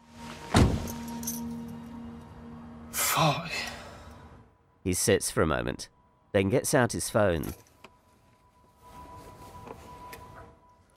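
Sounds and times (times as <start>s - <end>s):
dull thump of a person getting back into a car: 0.5s - 0.9s
speech: 3.2s - 3.7s, 4.8s - 7.6s.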